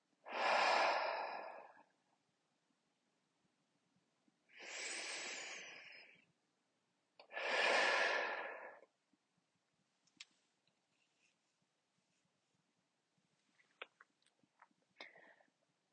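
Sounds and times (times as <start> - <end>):
slow deep breathing during a relaxation exercise while lying down: 0.3 - 1.9, 4.5 - 6.3, 7.2 - 8.9, 15.0 - 15.6.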